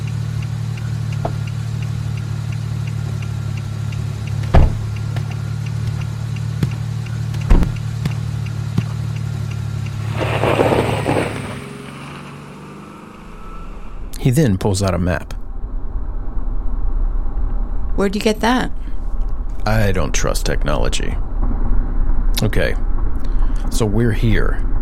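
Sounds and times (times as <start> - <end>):
car driving along a road and pulling over to the roadside: 0.0 - 24.7
sharp knocks: 4.4 - 9.0
speech: 14.3 - 15.4, 18.0 - 18.9, 19.6 - 21.3, 22.4 - 22.9, 23.6 - 24.7.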